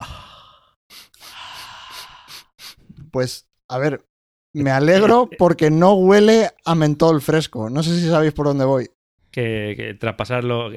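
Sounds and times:
breath blown into a microphone: 0.0 - 3.0
speech: 3.1 - 10.7.

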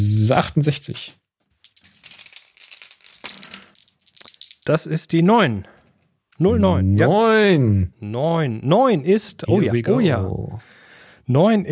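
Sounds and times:
speech: 0.0 - 1.2, 4.7 - 5.8, 6.4 - 11.7
dice rolling across a hard tabletop: 1.6 - 4.7.

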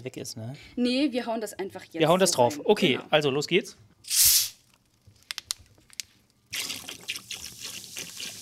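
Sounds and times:
speech: 0.0 - 4.3
short hissing burst: 4.0 - 4.6
cola pouring and splashing into a kitchen sink drain: 6.5 - 8.4.

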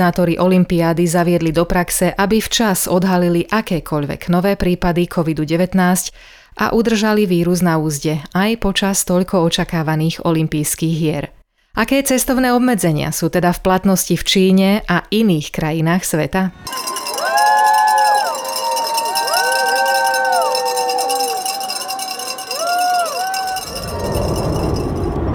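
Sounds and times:
speech: 0.0 - 17.4
airport crowd cheering and chattering as athletes board plane: 16.6 - 25.2
high whistle-like sliding tones: 16.7 - 25.2.

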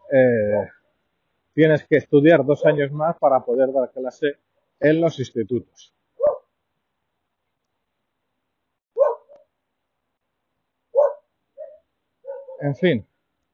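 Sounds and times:
speech: 0.1 - 0.8, 1.6 - 6.0, 12.6 - 13.1
female dog barking on the street: 6.2 - 6.5, 9.0 - 9.5, 11.0 - 12.7.

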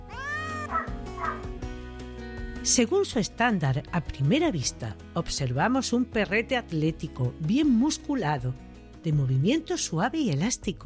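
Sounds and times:
cat meowing in drawn-out wavering cries: 0.0 - 1.6
speech: 2.6 - 10.8.

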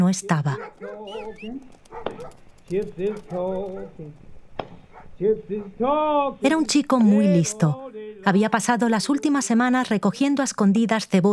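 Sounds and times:
speech: 0.1 - 4.3, 5.2 - 11.3
several dogs barking and yelping: 0.5 - 6.8.

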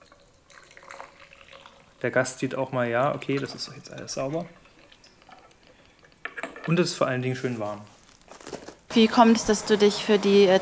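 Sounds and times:
hot water poured over teacups and a teapot to rinse and warm them: 0.0 - 5.8
speech: 2.0 - 4.6, 6.6 - 8.0, 9.0 - 10.6.

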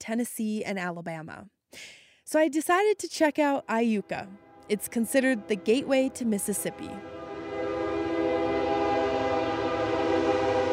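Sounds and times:
speech: 0.1 - 7.2
train horn blaring: 3.6 - 10.7.

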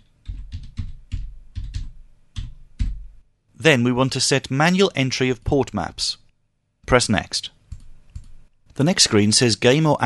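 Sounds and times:
typing on a computer keyboard: 0.0 - 3.0, 7.7 - 8.4
speech: 3.6 - 6.2, 6.9 - 7.6, 8.8 - 10.0.

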